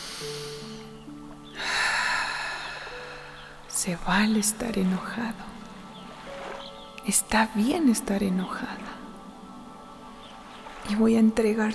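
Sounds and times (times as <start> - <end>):
deep breathing in and out: 1.6 - 3.6
speech: 3.8 - 5.6, 7.1 - 8.9, 10.9 - 11.7.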